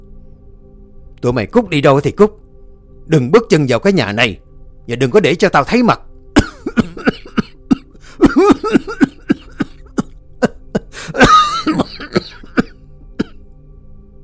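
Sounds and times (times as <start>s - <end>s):
speech: 1.2s - 2.4s, 3.1s - 6.1s
angry father coughing harshly: 6.4s - 13.4s.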